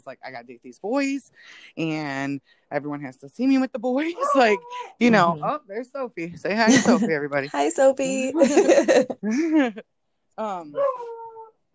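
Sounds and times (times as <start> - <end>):
speech: 0.0 - 11.1
laughter: 6.5 - 9.8
dog in a garage yelping: 10.8 - 11.5.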